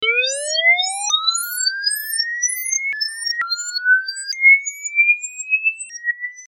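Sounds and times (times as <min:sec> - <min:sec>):
alien siren: 0:00.0 - 0:04.3.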